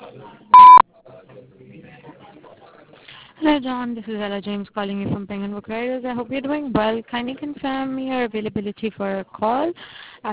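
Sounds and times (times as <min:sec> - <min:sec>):
voicemail recording electronic beep: 0:00.6 - 0:00.8
speech: 0:03.4 - 0:10.3.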